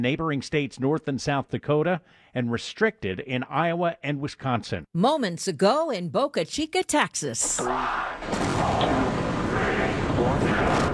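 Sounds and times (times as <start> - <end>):
speech: 0.0 - 9.1
Starship rocket roar at liftoff: 7.7 - 10.9.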